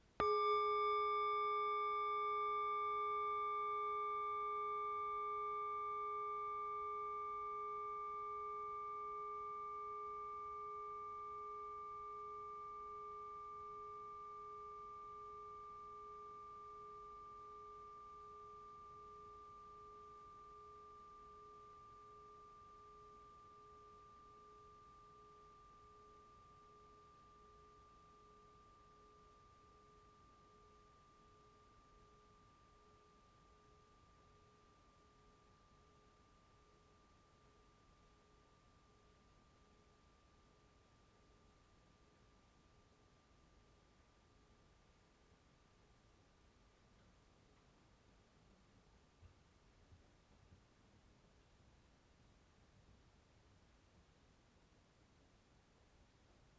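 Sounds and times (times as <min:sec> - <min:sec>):
105cm singing bowl ringing: 0:00.0 - 0:42.6.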